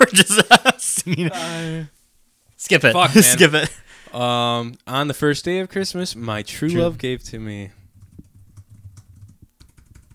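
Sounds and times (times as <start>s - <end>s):
speech: 0.0s - 2.0s, 2.6s - 7.8s
rapid typing on a computer keyboard: 7.9s - 10.1s.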